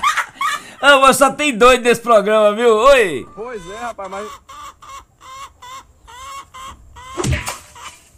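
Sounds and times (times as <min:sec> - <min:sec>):
speech: 0:00.8 - 0:04.5
chicken clucking: 0:03.0 - 0:08.1.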